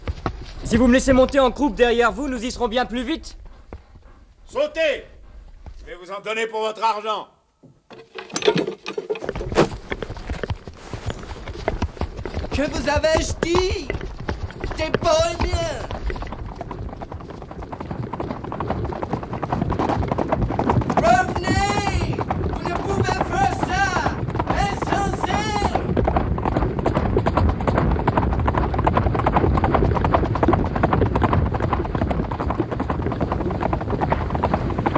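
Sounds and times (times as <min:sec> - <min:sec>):
horses galloping along a winding trail: 0:00.0 - 0:06.0, 0:08.2 - 0:34.9
speech: 0:00.2 - 0:03.4, 0:04.5 - 0:05.1, 0:05.9 - 0:07.3, 0:12.6 - 0:14.0, 0:14.8 - 0:15.9
horses whinnying: 0:09.3 - 0:26.2.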